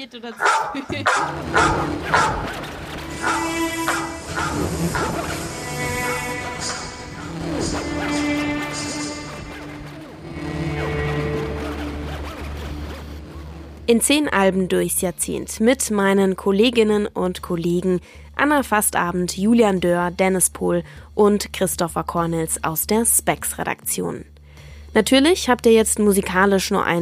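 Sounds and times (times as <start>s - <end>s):
speech: 0.0s - 8.5s, 13.9s - 24.3s, 24.9s - 26.9s
dog barking: 0.4s - 7.3s
steady tonal music-like background: 0.4s - 26.9s.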